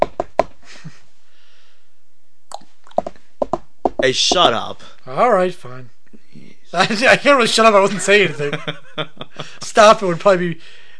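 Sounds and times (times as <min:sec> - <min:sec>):
sharp knocking taps from someone walking: 0:03.0 - 0:04.4
speech: 0:04.0 - 0:06.0, 0:06.7 - 0:10.8.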